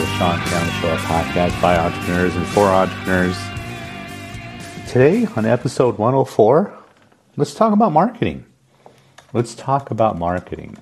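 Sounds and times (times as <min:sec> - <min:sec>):
speech: 0:00.2 - 0:03.5, 0:04.9 - 0:06.8, 0:07.4 - 0:08.5, 0:09.3 - 0:10.8
typing on a computer keyboard: 0:09.2 - 0:10.8.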